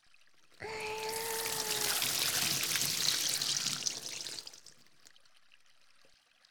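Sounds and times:
water pouring as shampoo is rinsed out of hair: 0.6s - 5.0s.

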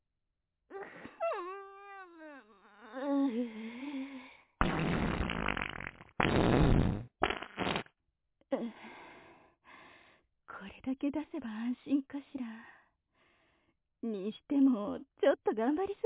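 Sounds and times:
long squeaky wavering fart inside a car during a drive: 0.8s - 3.0s, 4.6s - 7.9s
loud raspy fart blasts inside a car during a drive: 4.6s - 7.9s
speech: 11.1s - 12.8s, 14.0s - 16.0s.

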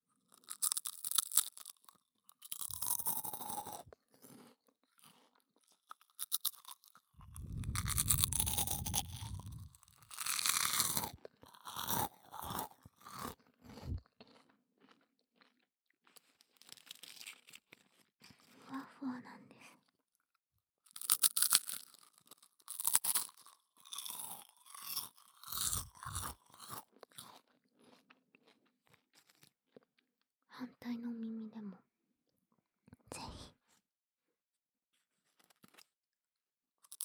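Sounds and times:
crunching and chewing of very crispy food: 0.2s - 18.7s, 20.9s - 29.8s
speech: 30.6s - 31.6s.

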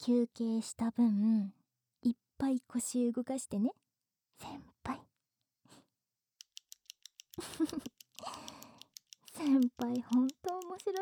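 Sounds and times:
speech: 0.0s - 3.8s, 4.4s - 5.1s, 7.4s - 8.6s, 9.4s - 11.0s
ballpoint pen clicking: 6.4s - 11.0s.

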